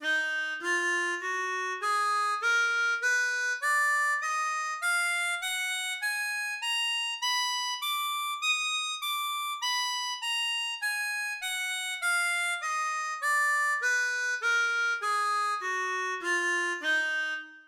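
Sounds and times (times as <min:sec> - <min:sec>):
harmonica scales in D minor: 0:00.0 - 0:17.6.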